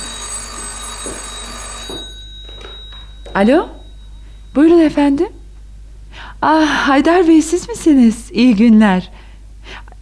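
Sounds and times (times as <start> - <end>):
old telephone bell ringing: 0.0 - 5.1
speech: 3.4 - 3.8, 4.5 - 5.4, 6.4 - 9.2.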